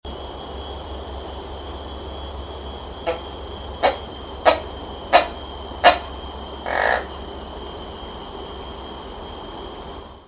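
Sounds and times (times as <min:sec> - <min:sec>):
large forest gecko Gekko smithi vocalisation in Johor Peninsular Malaysia: 0:02.8 - 0:07.5.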